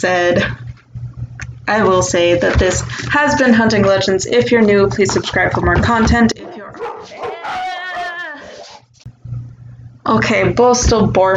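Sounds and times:
speech: 0:00.0 - 0:00.6, 0:01.7 - 0:07.3, 0:10.1 - 0:11.3
dog whimpering and yelping: 0:06.4 - 0:08.8.

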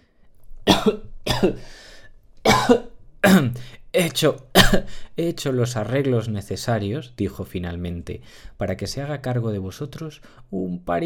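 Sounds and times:
person acting out a fit of coughing: 0:00.7 - 0:01.8, 0:02.5 - 0:03.7, 0:04.6 - 0:05.0
speech: 0:00.8 - 0:01.8, 0:02.4 - 0:11.0.

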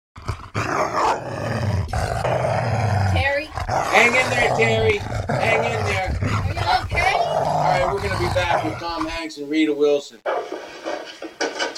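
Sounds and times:
dog growling and snarling aggressively: 0:00.2 - 0:09.2
speech: 0:04.0 - 0:06.3, 0:08.4 - 0:10.8.

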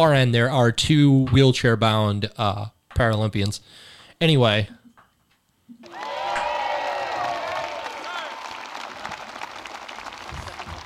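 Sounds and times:
speech: 0:00.0 - 0:04.8
large crowd clapping: 0:05.8 - 0:10.8.

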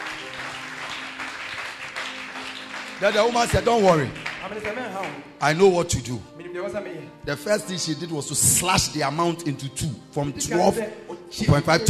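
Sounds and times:
crowd clapping hands at a gathering: 0:00.0 - 0:05.4
speech: 0:03.0 - 0:11.8.

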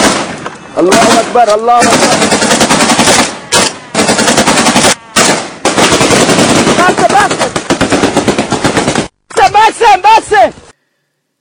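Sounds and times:
loud machine gun fire in long rapid bursts: 0:00.0 - 0:09.1
speech: 0:00.8 - 0:02.4, 0:09.9 - 0:10.6.

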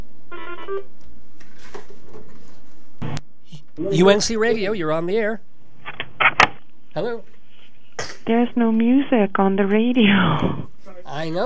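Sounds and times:
speech: 0:00.7 - 0:01.0, 0:03.8 - 0:05.5, 0:07.0 - 0:07.3, 0:08.3 - 0:11.4
telephone ringing with a short bright electronic trill: 0:03.8 - 0:04.3.

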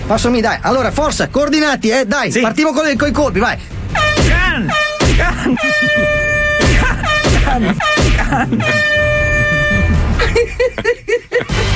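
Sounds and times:
speech: 0:00.1 - 0:06.3, 0:07.5 - 0:09.2, 0:10.3 - 0:11.7
small trumpet horn toot: 0:03.9 - 0:10.1
quick choppy laughter-like sounds: 0:05.2 - 0:11.7.

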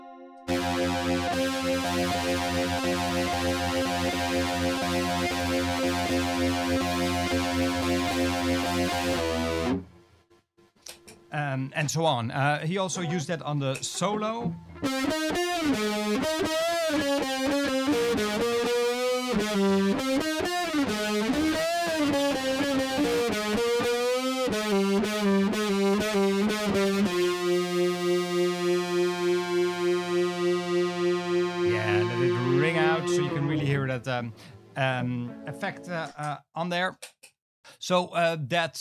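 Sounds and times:
electric guitar through distortion pedal and chorus pedal: 0:00.0 - 0:10.0, 0:13.8 - 0:36.3
speech: 0:00.7 - 0:09.9, 0:11.3 - 0:18.8, 0:19.4 - 0:27.2, 0:33.1 - 0:38.7.

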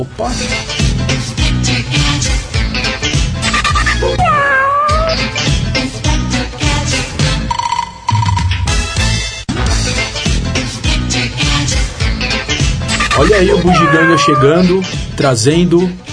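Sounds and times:
speech: 0:00.0 - 0:02.5, 0:13.2 - 0:16.0
loud busy music: 0:00.3 - 0:07.5, 0:08.7 - 0:16.1
cat meowing: 0:04.0 - 0:05.3, 0:13.5 - 0:14.7.

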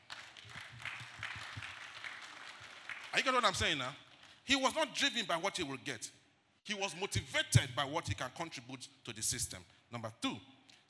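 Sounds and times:
church audience clapping: 0:00.0 - 0:04.4
speech: 0:03.2 - 0:10.8.

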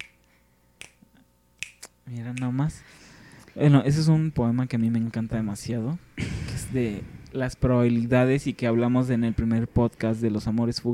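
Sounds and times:
finger snapping keeping rhythm: 0:00.0 - 0:02.6
speech: 0:02.1 - 0:03.0, 0:03.6 - 0:10.9.

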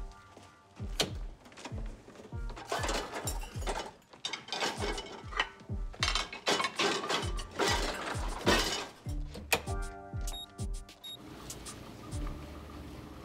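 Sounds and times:
dishwasher rack sliding and clicking: 0:01.0 - 0:09.7
plates and cutlery clinking and rattling into a dishwasher: 0:01.5 - 0:09.1.

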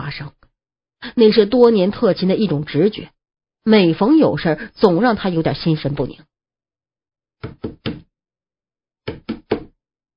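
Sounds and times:
speech: 0:00.1 - 0:00.4, 0:01.0 - 0:06.3, 0:07.4 - 0:08.0
firm knocks on a door: 0:07.4 - 0:08.1, 0:09.1 - 0:09.7.

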